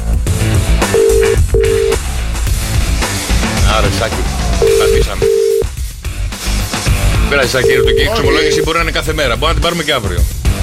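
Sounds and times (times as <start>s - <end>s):
busy musical background: 0.0s - 10.6s
telephone ringing in electronic pulses: 0.9s - 2.0s, 4.6s - 5.7s, 7.5s - 8.8s
speech: 7.3s - 10.6s.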